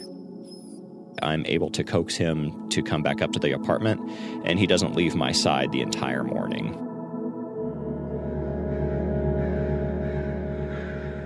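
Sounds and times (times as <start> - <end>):
speech: 1.2 - 6.9
crows squawking and cawing in a tree: 8.2 - 11.2.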